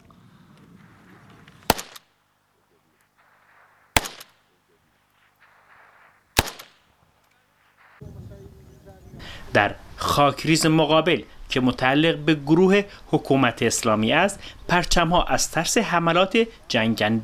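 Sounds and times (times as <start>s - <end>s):
Iraqi Kurdish Peshmerga gunshots on the Bashiqa front line in Iraq: 0.8s - 2.2s, 3.2s - 8.6s
speech: 9.5s - 17.2s.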